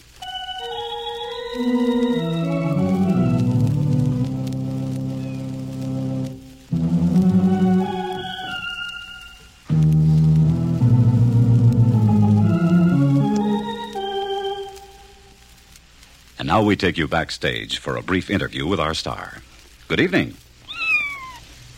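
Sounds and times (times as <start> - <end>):
Baldwin Orgasonic electric home organ chords played by a kitten stepping on keys: 0.0 - 15.3
speech: 1.5 - 2.3, 16.6 - 20.4.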